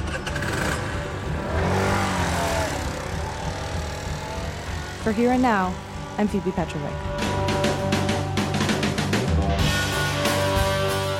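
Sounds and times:
outdoor noise: 0:00.0 - 0:09.6
small moped engine revving during a wheelie: 0:00.0 - 0:11.1
speech: 0:05.0 - 0:07.3.

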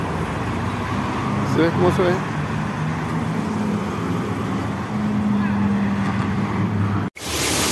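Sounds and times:
traffic noise: 0:00.0 - 0:07.6
speech: 0:01.6 - 0:02.3
water gushing from a burst street pipe: 0:07.2 - 0:07.6.

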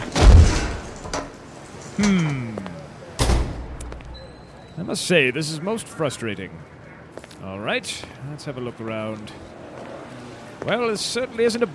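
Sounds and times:
door opening with thud and rattle: 0:00.0 - 0:01.4, 0:03.2 - 0:04.1
speech: 0:02.0 - 0:02.6, 0:04.8 - 0:06.8, 0:07.4 - 0:09.5, 0:10.6 - 0:11.7.

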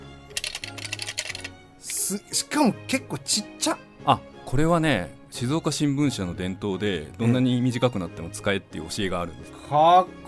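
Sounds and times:
pencils rattling in a tin pencil case: 0:00.4 - 0:01.5
speech: 0:02.1 - 0:10.2.

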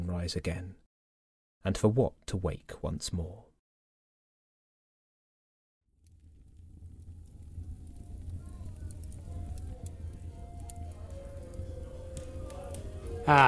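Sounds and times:
speech: 0:00.2 - 0:00.8, 0:01.6 - 0:03.5, 0:13.3 - 0:13.4
deep low rumble: 0:06.1 - 0:12.2
steady rain from a settling storm: 0:06.1 - 0:13.4.

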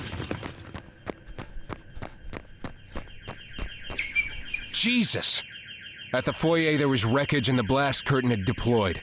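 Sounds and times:
heavy running footsteps of a security SWAT team in a foyer: 0:00.1 - 0:04.1
speech: 0:04.8 - 0:05.5, 0:06.1 - 0:09.0.

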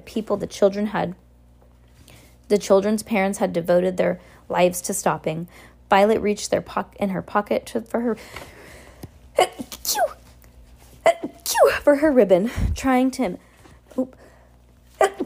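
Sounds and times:
person reading aloud: 0:00.0 - 0:01.2, 0:02.5 - 0:08.2, 0:09.4 - 0:10.2, 0:11.1 - 0:14.2
speech: 0:00.0 - 0:01.2, 0:02.5 - 0:08.6, 0:09.4 - 0:10.2, 0:11.2 - 0:14.2
person sneezing: 0:09.4 - 0:10.2, 0:11.0 - 0:11.8, 0:14.9 - 0:15.2.

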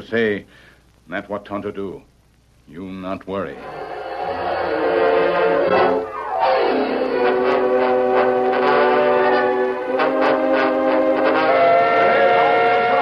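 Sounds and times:
speech: 0:00.0 - 0:02.1, 0:02.7 - 0:04.8
departing passenger train whistle: 0:04.5 - 0:13.0.

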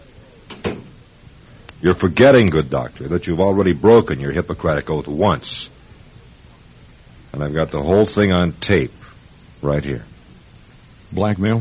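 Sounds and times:
door shutting with a double thud: 0:00.5 - 0:01.0
speech: 0:01.8 - 0:05.8, 0:07.3 - 0:09.0, 0:09.6 - 0:10.1, 0:11.1 - 0:11.5.

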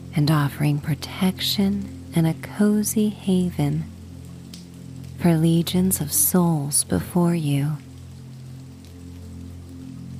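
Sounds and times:
steady rain pattering: 0:00.0 - 0:10.1
speech: 0:00.2 - 0:03.9, 0:05.2 - 0:07.9
rain drumming on the thatched roof of a stone cottage: 0:02.8 - 0:10.1.

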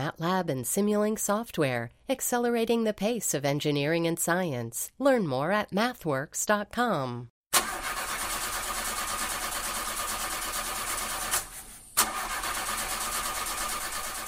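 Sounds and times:
speech: 0:00.0 - 0:07.3
car engine cranking on a fading battery on a freezing day: 0:07.6 - 0:14.2.

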